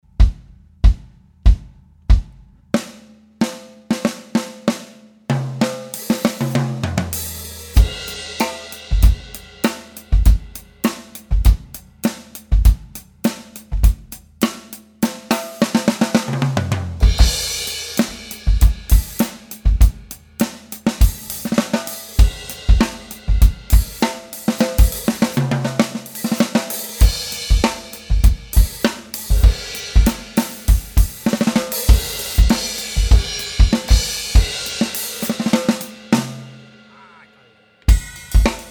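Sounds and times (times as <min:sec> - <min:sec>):
drums recorded on a handheld recorder: 0:00.0 - 0:38.6.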